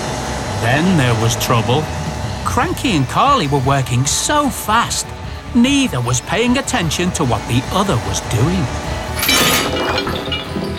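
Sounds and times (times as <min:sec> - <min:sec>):
speech: 0:00.6 - 0:08.9
two metal crane hooks crashing together and jangling: 0:09.1 - 0:10.7.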